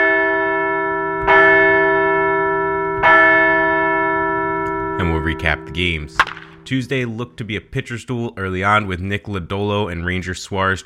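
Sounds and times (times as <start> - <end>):
bell ringing: 0.0 - 7.4
speech: 5.0 - 10.8.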